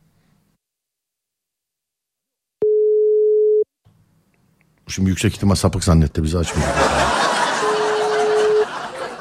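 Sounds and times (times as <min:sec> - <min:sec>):
telephone ringback tone while calling: 0:02.6 - 0:03.6
speech: 0:04.9 - 0:07.1
laughter: 0:06.4 - 0:09.1.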